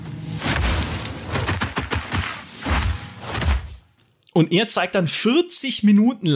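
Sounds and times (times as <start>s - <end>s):
designed fireball spell effect with bass booms: 0.0s - 3.8s
speech: 4.4s - 6.3s.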